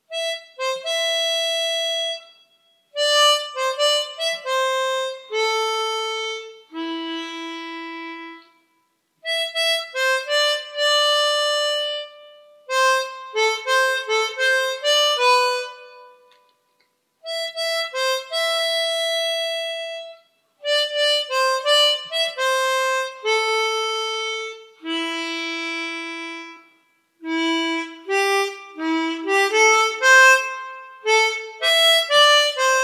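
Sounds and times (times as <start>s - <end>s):
harmonica: 0.0s - 16.4s, 17.2s - 32.8s.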